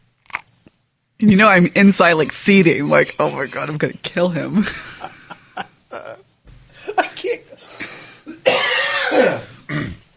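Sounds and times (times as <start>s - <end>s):
speech: 1.2s - 5.7s
laughter: 2.4s - 4.0s, 4.6s - 6.2s
coughing fit with throat-clearing: 7.9s - 10.0s
throat clearing: 8.5s - 10.1s.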